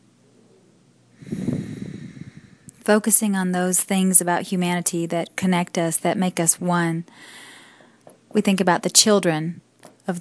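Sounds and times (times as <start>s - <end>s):
slow deep inhalation during a guided breathing meditation: 1.2s - 2.8s, 7.1s - 8.0s
speech: 2.9s - 7.5s, 8.4s - 10.1s.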